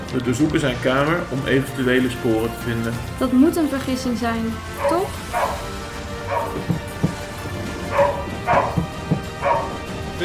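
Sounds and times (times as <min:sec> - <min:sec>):
speech: 0:00.1 - 0:05.4
search dog barking in short yips after finding a trace: 0:04.8 - 0:09.9.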